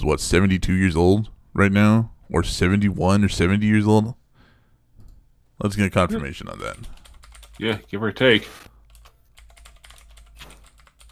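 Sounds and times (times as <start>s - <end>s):
speech: 0.0s - 4.2s, 5.6s - 7.0s, 7.6s - 8.7s
rapid typing on a computer keyboard: 6.6s - 7.8s, 8.8s - 11.0s.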